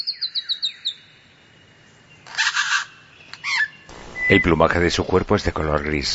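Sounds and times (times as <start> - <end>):
superb lyrebird harsh buzzing calls: 2.3 - 4.2
speech: 4.3 - 6.1.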